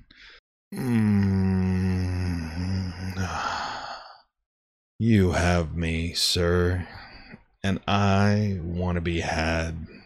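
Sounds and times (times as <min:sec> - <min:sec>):
long low human moan: 0:00.7 - 0:03.8
breathy exhale: 0:03.2 - 0:04.3
speech: 0:05.0 - 0:07.0, 0:07.6 - 0:10.0.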